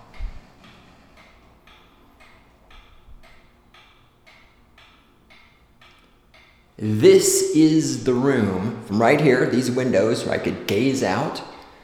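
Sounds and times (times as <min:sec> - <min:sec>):
clock ticking softly in an empty room: 0:00.1 - 0:08.2
speech: 0:06.8 - 0:11.5.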